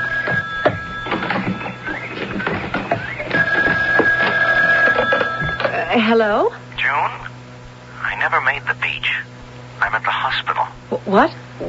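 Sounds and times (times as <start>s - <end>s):
telephone ringing with a steady electronic tone: 0.0s - 6.1s
speech: 6.0s - 7.2s, 8.2s - 9.3s, 9.9s - 11.6s.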